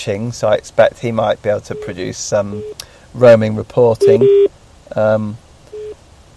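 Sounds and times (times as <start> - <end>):
speech: 0.0 - 5.4
phone ringing with an incoming call: 1.7 - 2.8, 4.0 - 4.5, 5.8 - 6.0
short electronic beep: 1.8 - 2.8, 4.0 - 4.5.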